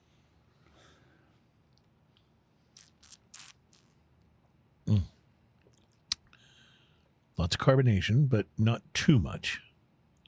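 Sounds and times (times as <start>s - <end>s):
sipping beer from a glass: 2.8s - 4.0s
gulp of beer: 4.9s - 5.2s
speech: 7.5s - 9.7s.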